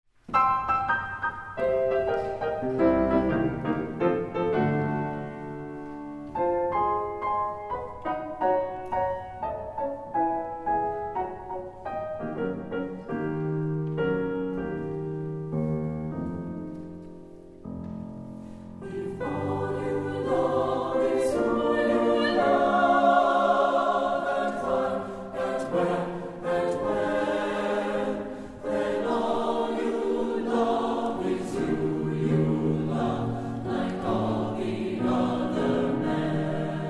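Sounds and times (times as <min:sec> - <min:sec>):
piano accompanying choir: 0:00.1 - 0:36.8
SSATB choir singing: 0:18.8 - 0:36.8.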